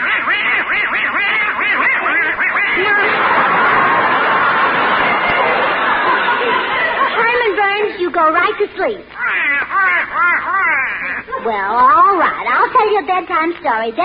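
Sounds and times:
little pet duck quacking in front of a fireplace: 0.0 - 3.1, 8.4 - 11.4
laughter: 1.7 - 11.7
speech: 8.5 - 14.0.

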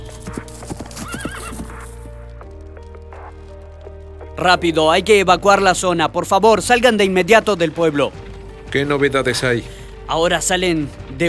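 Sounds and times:
horse hooves clip-clopping as a mounted soldier reaches a house: 0.0 - 3.8, 5.5 - 11.2
horse whinny: 0.2 - 2.1
speech: 4.4 - 11.2.

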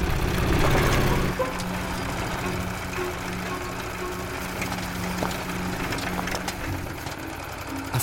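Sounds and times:
motorcycle engine droning while riding across the steppe at night: 0.0 - 8.0.

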